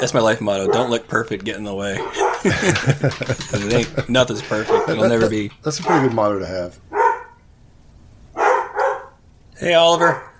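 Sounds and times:
speech: 0.0s - 6.9s, 9.6s - 10.3s
dog barking: 0.6s - 1.0s, 1.9s - 2.6s, 4.4s - 6.3s, 6.9s - 7.4s, 8.4s - 9.2s
laughter: 1.8s - 6.3s.

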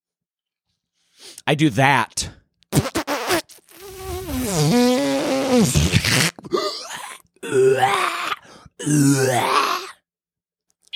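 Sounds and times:
speech: 1.4s - 2.4s, 5.5s - 6.7s, 8.8s - 9.8s
voice imitating a long groaning fart: 2.7s - 6.6s.

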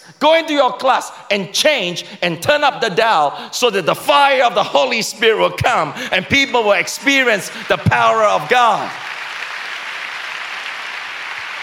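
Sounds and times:
speech: 0.1s - 9.1s
crowd clapping: 6.3s - 11.6s.

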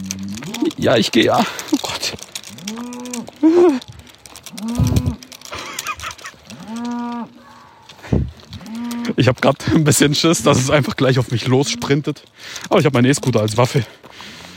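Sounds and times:
brief rustling and clattering noises: 0.0s - 14.5s
speech: 0.7s - 2.2s, 3.4s - 3.9s, 9.2s - 14.3s
large cow mooing with long low calls: 2.6s - 3.4s, 4.5s - 5.3s, 6.5s - 7.4s, 8.6s - 9.2s.

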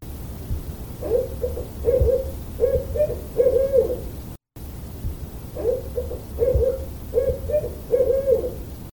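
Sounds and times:
barred owl hooting: 1.0s - 4.2s, 5.6s - 8.7s.

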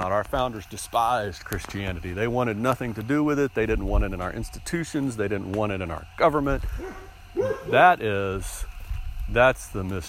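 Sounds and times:
speech: 0.0s - 8.7s, 9.3s - 10.0s
dog barking and yipping: 6.8s - 7.9s.

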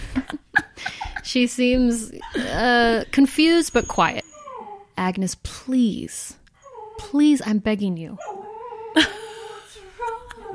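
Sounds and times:
speech: 1.3s - 4.2s, 5.0s - 6.4s, 7.0s - 8.3s
dog whimpering: 2.2s - 5.0s, 6.6s - 7.3s, 8.2s - 10.5s.

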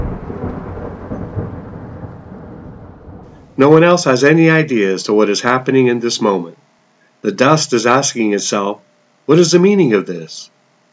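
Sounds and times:
deep sustained rumble of thunder: 0.0s - 3.6s
speech: 3.6s - 10.5s.

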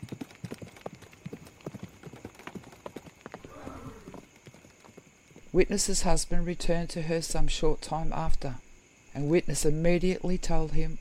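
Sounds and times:
horse galloping hoofbeats: 0.0s - 5.6s
speech: 5.6s - 8.6s, 9.2s - 10.9s.

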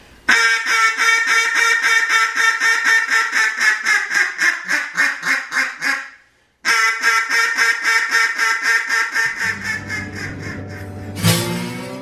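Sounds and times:
duck call blown in loud nasal quacks: 0.3s - 11.1s
low hum: 9.3s - 12.0s.

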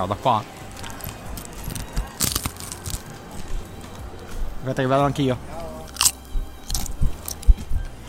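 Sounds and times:
speech: 0.0s - 0.6s, 4.6s - 5.5s
biting into a crunchy piadina flatbread: 0.7s - 3.2s, 5.9s - 7.5s
chewing a crunchy piadina flatbread: 0.7s - 3.6s, 5.8s - 7.8s.

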